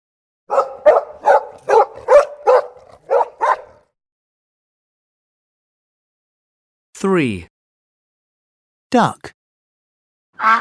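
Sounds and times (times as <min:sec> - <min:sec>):
dog barking: 0:00.5 - 0:03.9
speech: 0:07.0 - 0:07.5, 0:08.9 - 0:09.4, 0:10.4 - 0:10.5.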